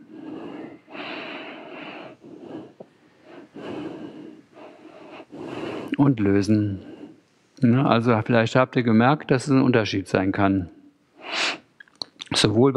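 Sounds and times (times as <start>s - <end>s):
deep breathing during yoga exercise: 0.0s - 7.3s
speech: 6.0s - 6.9s, 7.6s - 10.8s, 12.4s - 12.7s.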